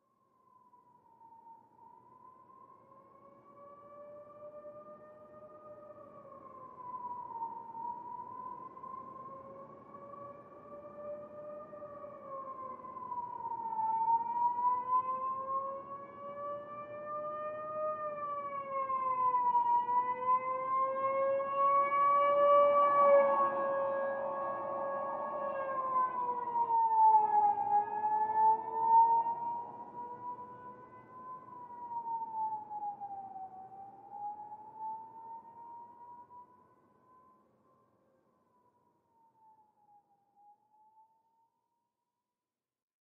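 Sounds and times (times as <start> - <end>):
slow police siren passing by: 3.2 - 37.3.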